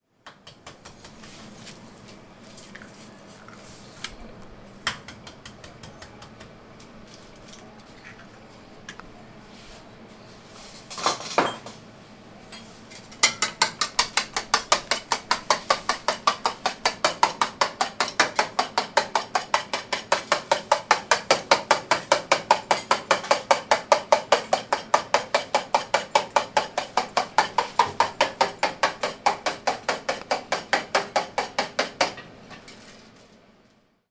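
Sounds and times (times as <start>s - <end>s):
egg beaten in enamelled iron plate in Bilbao: 13.1s - 32.2s.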